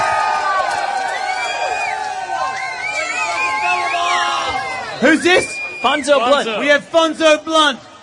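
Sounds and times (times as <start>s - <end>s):
crowd clapping: 0.0s - 4.4s
large crowd cheering with whoops and shouts: 0.0s - 8.0s
speech: 5.0s - 7.9s.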